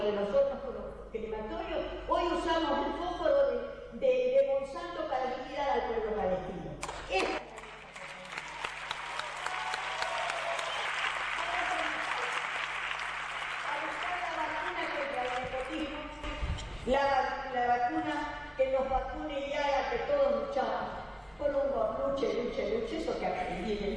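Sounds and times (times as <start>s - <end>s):
speech: 0.0s - 7.4s, 16.9s - 23.9s
auditorium audience applauding in a standing ovation: 6.8s - 15.9s.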